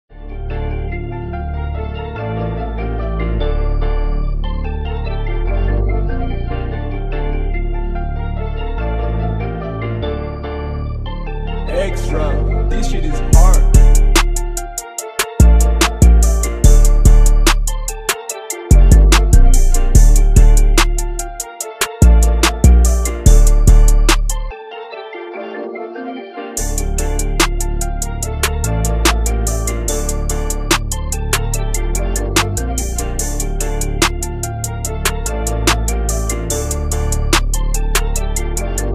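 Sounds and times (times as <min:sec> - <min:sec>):
instrumental music: 0:00.1 - 0:38.9.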